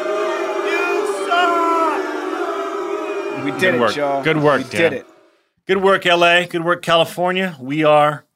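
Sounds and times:
crowd booing: 0:00.0 - 0:05.4
speech: 0:03.4 - 0:05.1, 0:05.7 - 0:08.3.

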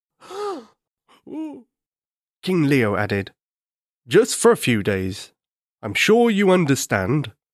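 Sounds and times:
person gasping in imitation of startled animals: 0:00.2 - 0:01.6
speech: 0:01.2 - 0:01.7, 0:02.4 - 0:03.4, 0:04.0 - 0:07.4.

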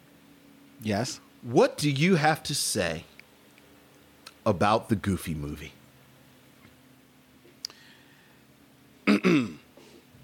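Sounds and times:
speech: 0:00.8 - 0:03.1, 0:04.4 - 0:05.8
rough guttural throat clearing: 0:09.0 - 0:09.7.

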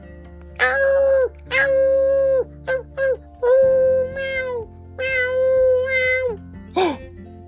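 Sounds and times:
baby cheetah calling: 0:00.6 - 0:06.6.

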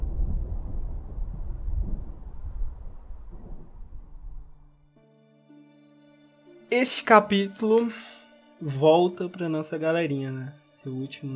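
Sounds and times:
gusting storm wind: 0:00.0 - 0:04.8
deep sustained thunder rumbling: 0:00.0 - 0:04.9
speech: 0:06.7 - 0:11.3.

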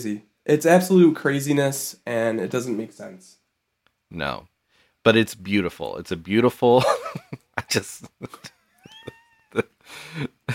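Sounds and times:
speech: 0:00.0 - 0:03.4, 0:04.1 - 0:08.6, 0:09.5 - 0:10.3
cat meowing for bacon: 0:08.9 - 0:09.6.

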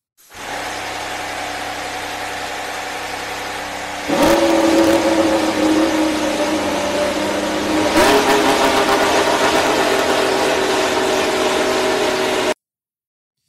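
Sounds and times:
Aston Martin AMR22 Formula 1 car engine firing up and revving: 0:03.4 - 0:12.6.

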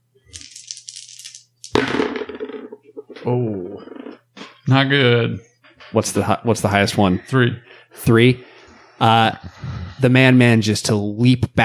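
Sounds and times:
dice rattling in a cupped hand: 0:00.3 - 0:01.8
dice clattering on a hard surface: 0:00.3 - 0:02.8
speech: 0:03.2 - 0:03.9, 0:04.7 - 0:11.6.

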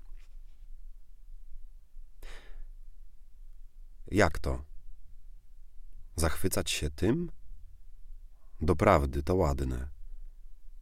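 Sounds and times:
book pages being flipped while someone searches for a quotation: 0:00.0 - 0:00.7
speech: 0:04.1 - 0:04.7, 0:06.2 - 0:07.4, 0:08.6 - 0:09.9.

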